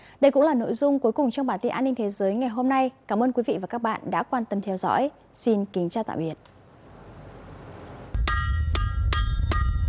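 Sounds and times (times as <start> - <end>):
speech: 0.2 - 6.5
blacksmith hammer striking metal: 8.2 - 9.8.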